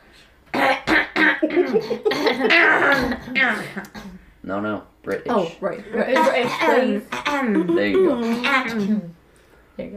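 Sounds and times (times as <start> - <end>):
person coughing: 0.6 - 3.4, 6.2 - 8.8
speech: 1.7 - 9.2, 9.8 - 9.9.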